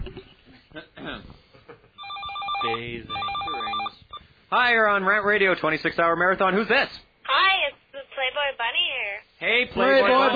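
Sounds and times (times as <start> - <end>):
speech: 0.7 - 1.4, 2.6 - 3.7, 4.5 - 7.5, 9.6 - 10.3
telephone on a radio call-in line ringing with an incoming call: 2.0 - 4.2.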